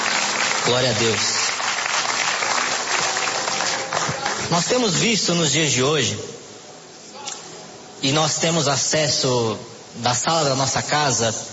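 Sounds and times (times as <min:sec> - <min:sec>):
congregation clapping during a church service: 0:00.0 - 0:05.0
speech: 0:00.7 - 0:01.4, 0:04.5 - 0:06.4, 0:08.0 - 0:11.5.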